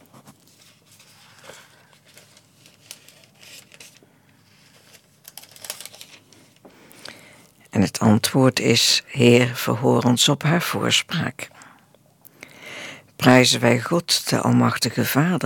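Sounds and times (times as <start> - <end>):
thin pages of a prayer book being turned: 0.0 - 7.0
speech: 7.8 - 11.6, 13.2 - 15.4.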